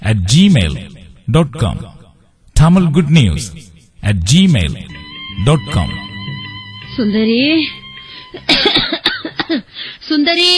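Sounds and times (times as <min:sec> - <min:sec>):
speech: 0:00.1 - 0:02.0, 0:02.6 - 0:06.0, 0:07.0 - 0:10.5
person coughing: 0:08.5 - 0:09.6.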